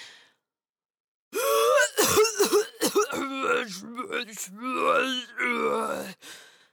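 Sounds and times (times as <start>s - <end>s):
voice performing rough throat-clearing coughs: 1.4s - 3.7s
voice making strained grumbling groans and mutters: 3.0s - 6.2s.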